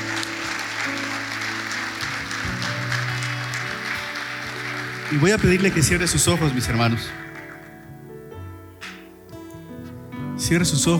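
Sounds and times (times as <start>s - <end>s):
audience applauding: 0.0s - 7.9s
speech: 5.1s - 7.2s, 10.5s - 10.9s.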